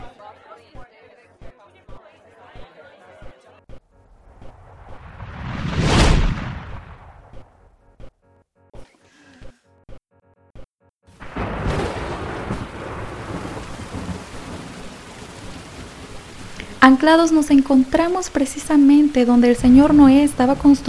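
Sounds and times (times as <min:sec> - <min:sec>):
thunder rumble: 0:04.0 - 0:07.8, 0:11.2 - 0:20.8
rain pouring: 0:04.2 - 0:07.4, 0:11.2 - 0:20.8
speech: 0:16.8 - 0:20.8.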